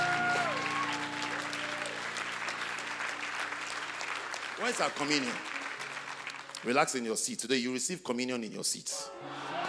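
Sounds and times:
audience clapping: 0.0 - 7.6
speech: 4.6 - 5.6, 6.6 - 9.5.

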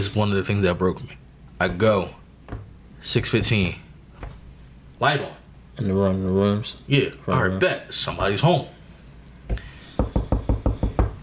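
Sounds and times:
speech: 0.0 - 3.8, 5.0 - 8.8, 9.5 - 9.7
firm knocking on a door: 2.5 - 2.7, 10.0 - 11.2.

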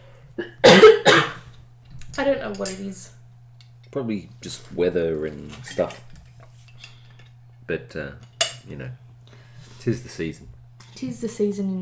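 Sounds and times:
faint steady hum: 0.0 - 11.8
person coughing: 0.4 - 1.5
speech: 2.2 - 3.2, 3.9 - 6.1, 7.7 - 9.0, 9.8 - 11.8.

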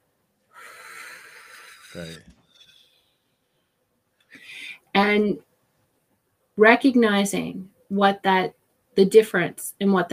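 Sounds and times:
shallow inhale drawn from the chest: 0.5 - 2.9, 4.4 - 4.8
speech: 2.0 - 2.4, 5.0 - 5.5, 6.6 - 10.1.

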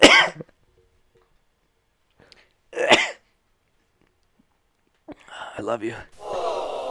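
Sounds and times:
coughing into a microphone: 0.0 - 0.6, 2.8 - 3.3
speech: 5.6 - 6.2.

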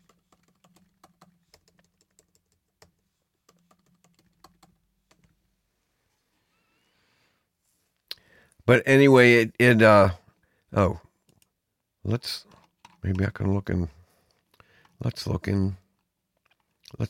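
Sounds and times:
keys being struck on a computer keyboard: 0.0 - 5.4
quiet noise: 0.0 - 17.0
speech: 8.7 - 11.0, 12.1 - 14.0, 15.0 - 15.8.

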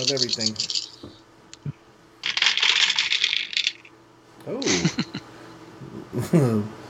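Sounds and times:
speech: 0.0 - 1.1, 4.4 - 5.0, 6.3 - 6.8
colored game dice clattering across a hard table: 0.0 - 1.2, 2.2 - 3.9.

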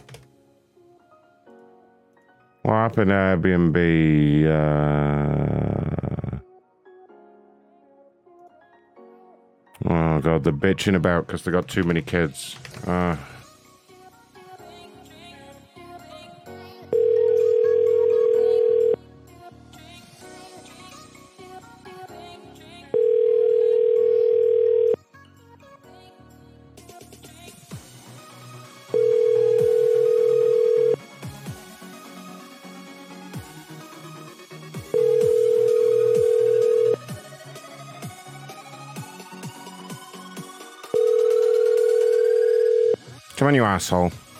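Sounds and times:
speech: 2.9 - 5.8, 10.2 - 13.3, 43.5 - 44.2
telephone call ringing out before going to voicemail: 16.9 - 19.0, 23.0 - 25.0, 28.9 - 31.0, 34.9 - 37.1, 40.9 - 43.1.

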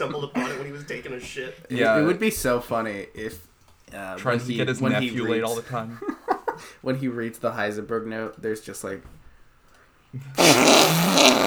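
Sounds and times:
laughter: 0.0 - 1.7, 4.8 - 6.8
speech: 0.0 - 9.2, 10.1 - 11.4
voice imitating a fart with a buzzing raspberry: 10.4 - 11.4.

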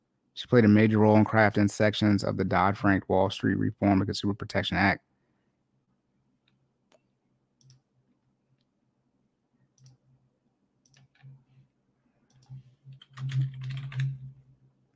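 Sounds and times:
speech: 0.4 - 5.1
typing on a computer keyboard: 10.8 - 11.4, 12.3 - 14.4.

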